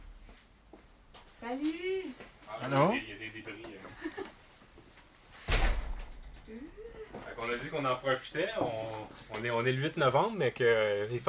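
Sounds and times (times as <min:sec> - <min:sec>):
soft room noise: 0:00.0 - 0:11.2
speech: 0:01.4 - 0:04.3, 0:06.5 - 0:11.2
laughter: 0:03.8 - 0:04.4
door opening with thump and rattle: 0:05.4 - 0:06.5.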